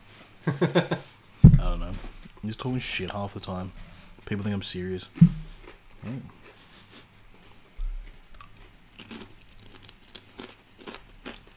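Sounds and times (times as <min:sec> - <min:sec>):
speech: 0:00.4 - 0:01.1, 0:02.4 - 0:05.4, 0:06.0 - 0:06.4
barbecue-flavoured potato chips being chewed: 0:07.8 - 0:11.5.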